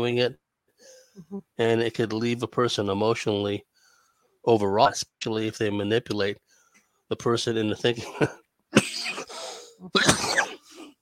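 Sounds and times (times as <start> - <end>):
speech: 0.0 - 3.7, 4.4 - 6.4, 7.1 - 8.9, 9.8 - 10.4
person coughing: 8.2 - 11.0.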